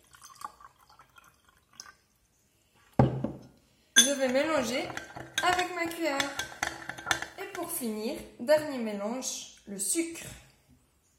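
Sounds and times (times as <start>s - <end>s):
water pouring onto salt: 0.0s - 2.0s
faint water drips: 0.0s - 2.9s
speech: 4.2s - 6.5s, 7.6s - 10.4s.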